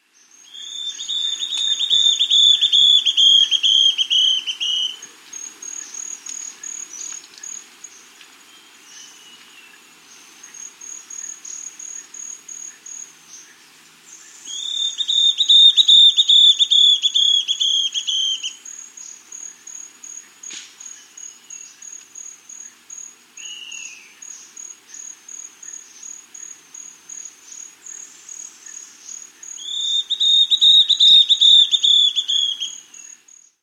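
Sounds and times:
Spotted Antbird in South America: 0:00.4 - 0:07.6, 0:14.4 - 0:18.6, 0:28.7 - 0:33.2.

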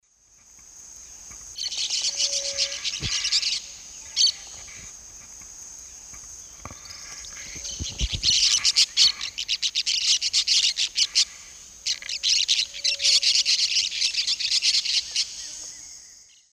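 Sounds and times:
Brotogeris cyanoptera flight calls in the Eastern Lowlands of South America: 0:01.6 - 0:04.9, 0:06.5 - 0:15.3.

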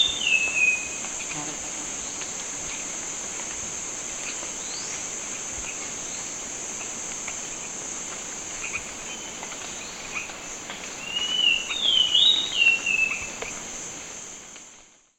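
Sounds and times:
Thrush-like schiffornis slurred whistled song in Ecuador: 0:00.0 - 0:00.9, 0:11.0 - 0:13.3
steady high insect drone in Ecuador: 0:00.0 - 0:15.0.

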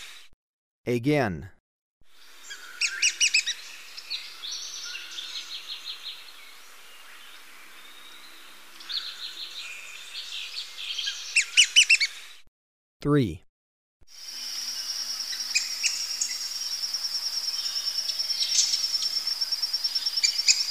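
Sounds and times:
speech: 0:00.9 - 0:01.6, 0:13.0 - 0:13.5
rufous-winged tyrannulet chirping in Ecuador: 0:02.2 - 0:12.2, 0:14.5 - 0:20.6.

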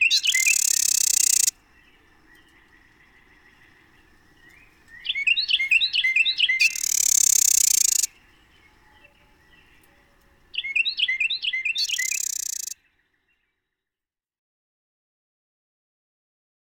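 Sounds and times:
Carolina wren singing rolling phrases: 0:00.0 - 0:13.4.

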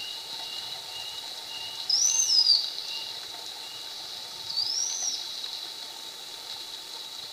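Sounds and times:
slaty-backed chat-tyrant whistling in Ecuador: 0:00.0 - 0:05.4
steady background hiss: 0:00.0 - 0:07.3.

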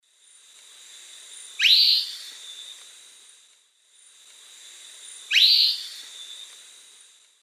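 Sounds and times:
Philydor erythrocercum calling: 0:01.6 - 0:02.6, 0:05.3 - 0:06.4.

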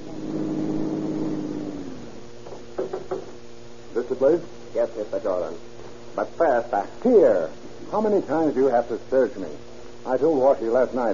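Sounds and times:
car engine winding down as the car stops at the bottom of a steep hill: 0:00.0 - 0:02.2
speech: 0:04.1 - 0:11.1.

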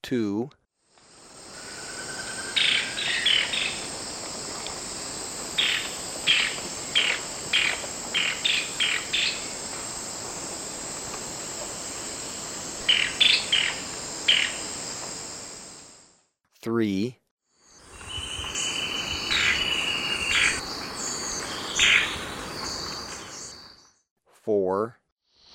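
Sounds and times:
speech: 0:00.0 - 0:00.6, 0:16.6 - 0:17.2
steady high insect drone: 0:01.0 - 0:16.1, 0:17.6 - 0:23.7
golden-winged tody-flycatcher calling in Ecuador: 0:01.4 - 0:04.0, 0:05.5 - 0:09.6, 0:12.8 - 0:14.7, 0:17.8 - 0:23.8.

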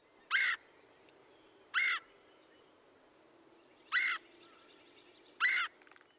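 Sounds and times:
red-headed woodpecker raspy high-pitched calls: 0:00.3 - 0:00.6, 0:01.8 - 0:02.1, 0:03.9 - 0:04.7, 0:05.4 - 0:06.1.

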